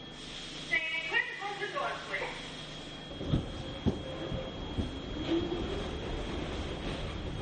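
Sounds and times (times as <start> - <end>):
subway train rumbling: 0.0 - 7.4
subway train cars clunking and rattling: 3.1 - 7.4.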